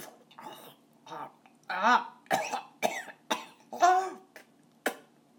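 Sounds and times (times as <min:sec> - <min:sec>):
person gagging: 0:01.1 - 0:02.2, 0:03.8 - 0:04.4
person coughing: 0:01.8 - 0:05.1.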